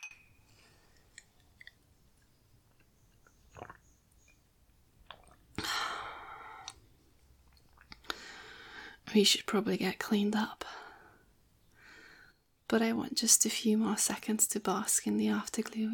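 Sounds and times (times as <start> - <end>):
glasses of water clinking in a toast: 0.0 - 0.7
speech: 9.1 - 10.8, 12.7 - 15.9.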